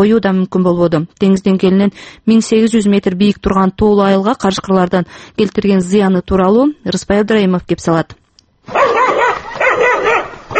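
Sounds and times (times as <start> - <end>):
speech: 0.0 - 9.0
dog barking in a mountain village: 8.7 - 10.5.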